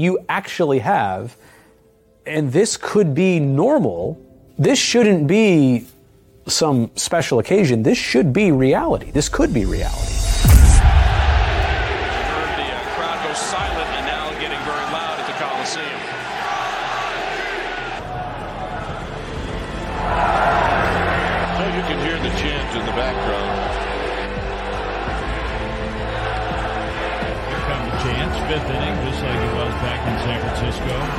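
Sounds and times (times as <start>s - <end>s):
speech: 0.0s - 1.6s, 2.3s - 10.7s
large baseball stadium crowd roaring and chanting at a baseball game: 10.0s - 31.1s.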